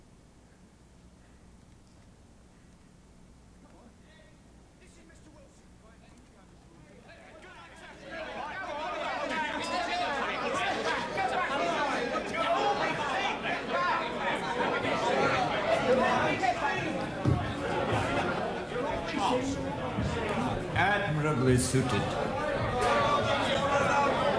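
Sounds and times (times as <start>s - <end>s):
large crowd of red-headed job applicants chattering: 3.7s - 24.3s
speech: 21.7s - 22.2s.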